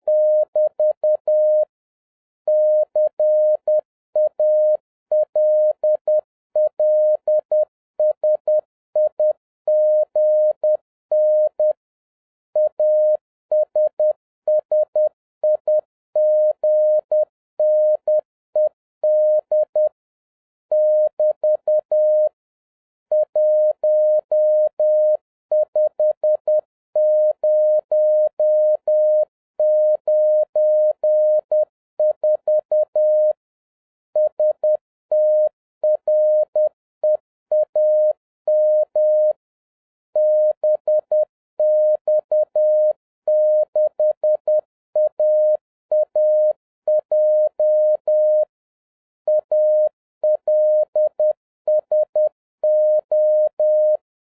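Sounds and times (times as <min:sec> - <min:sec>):
Morse code beeps at ten words per minute: 0:00.1 - 0:01.6, 0:02.5 - 0:11.7, 0:12.6 - 0:19.9, 0:20.7 - 0:22.3, 0:23.1 - 0:33.3, 0:34.2 - 0:39.3, 0:40.2 - 0:48.4, 0:49.3 - 0:54.0.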